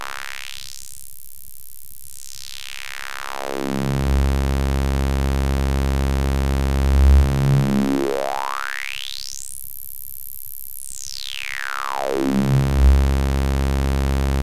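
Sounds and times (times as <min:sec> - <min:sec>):
synth saw wave: 0:03.3 - 0:08.4, 0:11.9 - 0:14.4.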